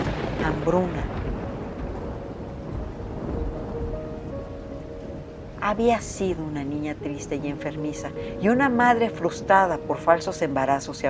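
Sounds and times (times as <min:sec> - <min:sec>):
deep continuous rumble of thunder: 0:00.0 - 0:11.0
heavy rain of a torrential downpour over England: 0:00.0 - 0:11.0
speech: 0:00.4 - 0:01.2, 0:05.7 - 0:11.0.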